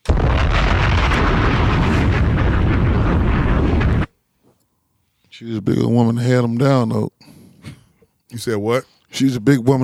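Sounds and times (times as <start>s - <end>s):
bomb explosion: 0.0s - 4.1s
speech: 5.4s - 7.3s, 8.3s - 9.8s.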